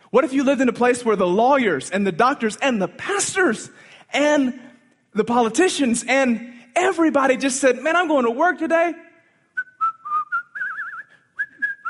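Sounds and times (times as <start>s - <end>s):
speech: 0.1s - 9.1s
person whistling a bright bouncy melody: 9.5s - 11.8s.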